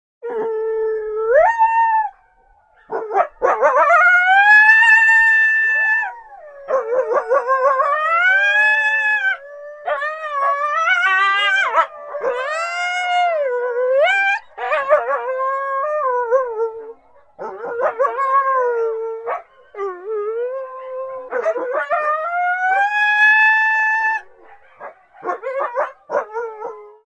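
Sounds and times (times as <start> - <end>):
coyote pack howling and barking in background: 0.2 - 27.0
single coyote howling: 2.9 - 16.5, 17.6 - 24.3.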